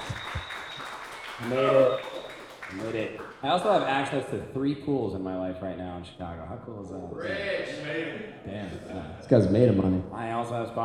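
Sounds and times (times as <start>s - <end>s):
small crowd applause: 0.0s - 3.8s
speech: 1.4s - 2.1s, 2.7s - 10.8s.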